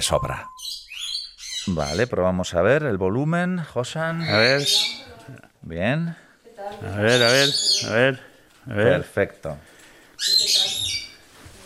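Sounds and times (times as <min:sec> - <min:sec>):
speech: 0:00.0 - 0:00.8, 0:01.6 - 0:10.6
bird chirping: 0:00.0 - 0:02.4, 0:04.1 - 0:05.4, 0:06.8 - 0:08.3, 0:10.2 - 0:11.2.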